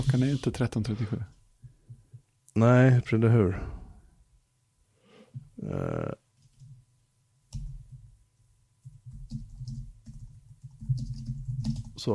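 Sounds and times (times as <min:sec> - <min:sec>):
speech: 0:00.0 - 0:01.4, 0:02.6 - 0:03.8, 0:05.6 - 0:06.2
typing on a large computer keyboard to reply to text messages: 0:06.4 - 0:06.8, 0:07.5 - 0:08.1, 0:08.8 - 0:12.1.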